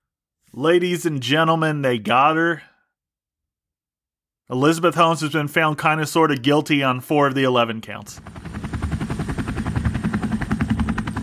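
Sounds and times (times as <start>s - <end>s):
speech: 0.5s - 2.7s, 4.5s - 8.4s
U.S. government helicopter rotor chopping: 8.0s - 11.2s.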